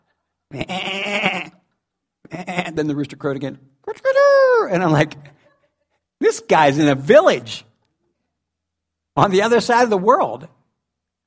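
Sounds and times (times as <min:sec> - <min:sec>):
speech: 0:00.5 - 0:01.5, 0:02.3 - 0:04.1, 0:04.7 - 0:05.4, 0:06.2 - 0:07.7, 0:09.2 - 0:10.6
sheep or goat bleating: 0:00.5 - 0:01.6.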